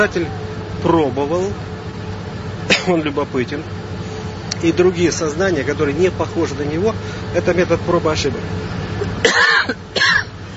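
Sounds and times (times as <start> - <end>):
speech: 0.0 - 1.8, 2.8 - 3.8, 4.6 - 9.8
harsh throaty coughs: 2.7 - 3.0, 9.2 - 10.4.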